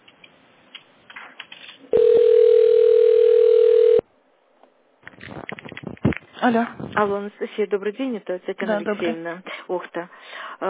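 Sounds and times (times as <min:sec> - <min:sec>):
steady telephone line tone during a call transfer: 0:01.9 - 0:04.1
speech: 0:06.4 - 0:10.6.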